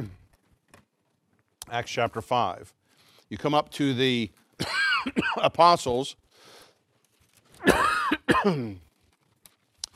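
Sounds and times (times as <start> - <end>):
speech: 1.7 - 6.6, 7.6 - 8.8
man coughing and clearing his throat: 4.6 - 5.6, 7.6 - 8.8.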